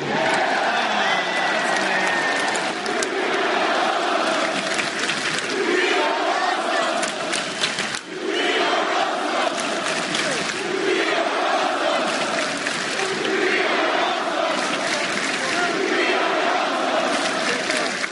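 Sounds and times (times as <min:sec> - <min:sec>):
large arena crowd chanting and cheering: 0:00.0 - 0:18.1.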